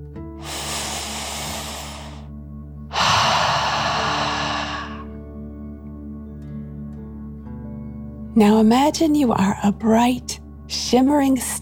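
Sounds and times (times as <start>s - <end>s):
slow deep breath drawn in: 0.4s - 2.3s, 2.9s - 5.2s
strong exhale pushed out through the mouth: 0.4s - 2.3s, 2.9s - 5.2s
speech: 8.4s - 11.6s.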